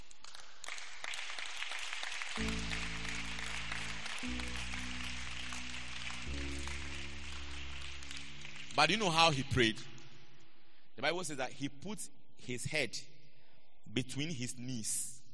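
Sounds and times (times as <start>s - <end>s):
audience clapping: 0.0s - 9.8s
sustained keyboard or organ chords: 2.4s - 9.5s
speech: 8.8s - 9.9s, 11.0s - 13.1s, 13.9s - 15.1s.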